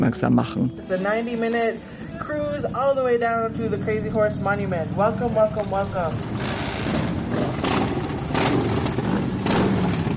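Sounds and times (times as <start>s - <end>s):
speech: 0.0s - 6.6s
many motorcycle engines revving as a large group pulls away: 1.5s - 10.1s.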